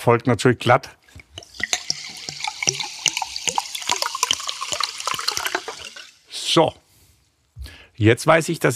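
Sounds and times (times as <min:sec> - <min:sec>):
speech: 0:00.0 - 0:01.0, 0:06.6 - 0:06.8, 0:08.0 - 0:08.7
poured liquid gurgling: 0:01.1 - 0:06.4
sparkling mineral water fizzing as poured: 0:01.1 - 0:06.6.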